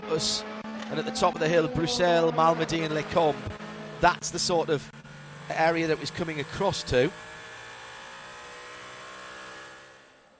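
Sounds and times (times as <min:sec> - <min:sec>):
speech: 0:00.0 - 0:07.3
blue-fronted Cadillac race car roaring past on a racing circuit at high revs: 0:00.0 - 0:10.3.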